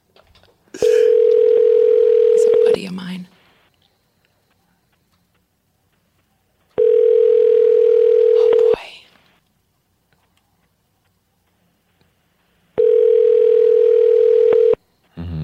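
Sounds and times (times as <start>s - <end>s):
phone ringing: 0.8s - 2.8s, 6.8s - 8.8s, 12.8s - 14.8s.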